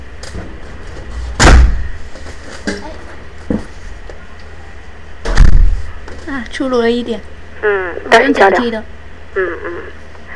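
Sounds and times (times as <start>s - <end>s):
faint noise: 0.0s - 10.3s
door shutting with a heavy thud: 0.2s - 2.0s, 5.2s - 5.9s
loud bang: 1.3s - 2.0s, 5.2s - 5.9s
speech: 6.3s - 10.0s.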